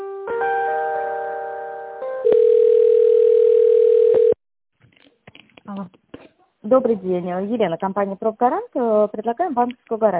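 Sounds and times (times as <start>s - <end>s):
telephone line tones during a call transfer: 2.2s - 4.4s
speech: 6.7s - 10.1s.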